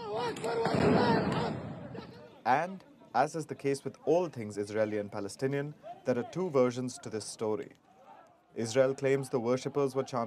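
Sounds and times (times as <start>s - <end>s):
people shouting and yelling: 0.0s - 2.4s
speech: 0.3s - 1.6s, 2.4s - 7.8s, 8.6s - 10.2s
firework bangs and pops: 0.3s - 2.1s.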